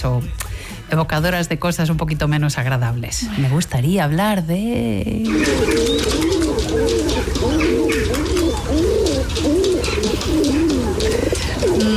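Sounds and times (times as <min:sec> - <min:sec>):
speech: 0:00.0 - 0:08.0
city pigeons cooing: 0:05.2 - 0:11.9.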